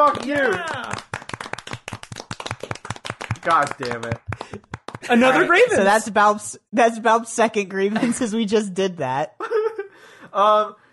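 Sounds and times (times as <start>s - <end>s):
speech: 0.0s - 1.1s, 3.4s - 9.6s, 10.3s - 10.8s
people clapping: 0.0s - 5.7s.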